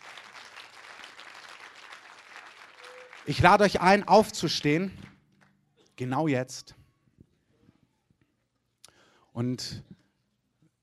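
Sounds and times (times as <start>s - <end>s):
crowd applauding: 0.0s - 5.2s
speech: 3.2s - 5.1s, 6.0s - 6.8s, 9.4s - 10.0s.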